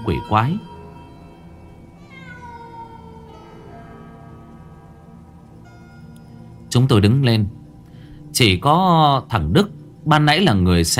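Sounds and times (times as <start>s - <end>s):
speech: 0.0s - 0.7s, 6.7s - 7.6s, 8.4s - 10.9s
stray cat meowing: 0.0s - 3.8s.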